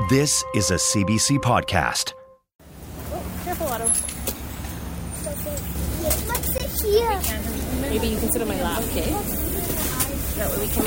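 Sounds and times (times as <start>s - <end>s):
speech: 0.1s - 2.2s, 6.8s - 9.4s, 10.4s - 10.8s
bus engine rumbling inside a crowded city bus: 2.6s - 10.8s
passengers murmuring inside a crowded bus: 5.3s - 10.8s.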